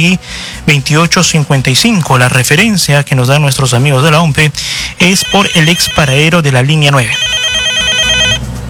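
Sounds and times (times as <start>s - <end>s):
speech: 0.0s - 7.6s
telephone ringing for an incoming call: 5.0s - 8.4s.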